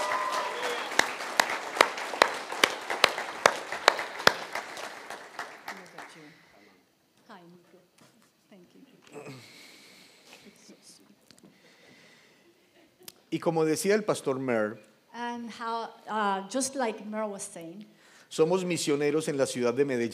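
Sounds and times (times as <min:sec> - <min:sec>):
audience applauding: 0:00.0 - 0:06.6
speech: 0:13.4 - 0:14.9, 0:16.5 - 0:20.1.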